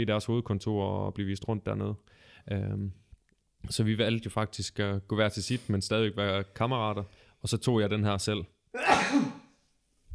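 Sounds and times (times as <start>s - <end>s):
speech: 0.0s - 3.0s, 3.6s - 9.4s
single forceful sneeze: 8.8s - 9.5s.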